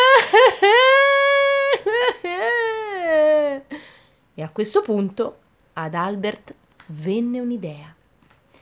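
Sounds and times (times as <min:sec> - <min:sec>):
human voice imitating a tree crying with wailing sobs: 0:00.0 - 0:03.8
speech: 0:04.4 - 0:08.0.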